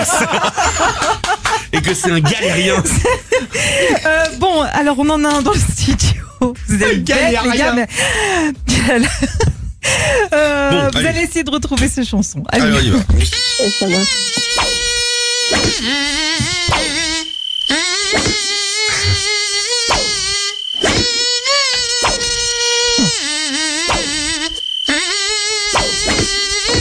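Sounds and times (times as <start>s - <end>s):
speech: 0.0s - 0.7s, 1.7s - 6.0s, 6.7s - 9.5s, 10.4s - 14.7s, 15.5s - 17.0s
laughter: 0.0s - 4.4s, 6.7s - 11.0s, 12.6s - 13.2s
nasal mosquito-like buzzing whine tracing a tune: 12.6s - 26.7s.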